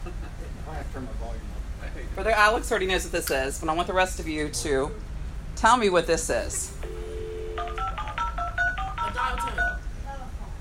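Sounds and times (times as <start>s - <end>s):
low steady hum: 0.0s - 10.6s
speech: 0.9s - 7.0s
soft dial-up modem tones: 6.8s - 9.9s.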